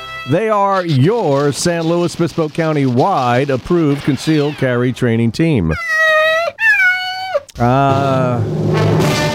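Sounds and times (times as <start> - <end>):
cat meowing for food: 0.0 - 1.0, 5.7 - 7.5
speech: 0.2 - 6.1, 7.6 - 9.2.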